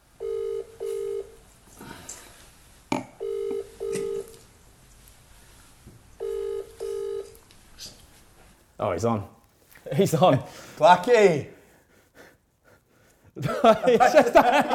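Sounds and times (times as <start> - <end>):
faint room noise: 0.0 - 14.7
double ringback tones through a phone earpiece: 0.2 - 1.4, 3.2 - 4.4, 6.2 - 7.4
speech: 8.8 - 11.6, 13.6 - 14.7
laughter: 13.4 - 14.7.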